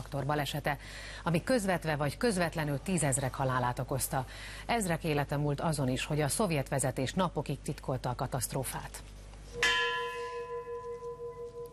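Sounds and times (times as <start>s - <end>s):
speech: 0.1s - 9.7s
large memorial bell tolling: 9.6s - 11.7s.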